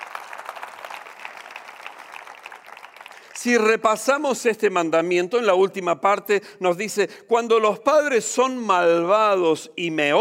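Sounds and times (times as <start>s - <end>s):
crowd applauding: 0.0s - 3.8s
speech: 3.4s - 10.2s.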